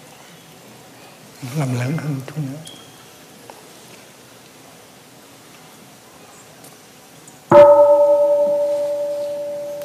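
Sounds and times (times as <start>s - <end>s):
speech: 1.4s - 2.8s
temple bell wake-up strike: 7.5s - 9.8s.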